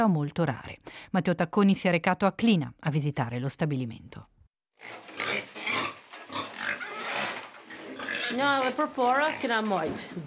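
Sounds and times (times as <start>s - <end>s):
speech: 0.0s - 5.5s, 8.3s - 10.2s
pigs squealing on a pig farm in Klina: 4.8s - 9.6s
pigs grunting and snuffling on a pig farm in Klina: 4.8s - 10.2s.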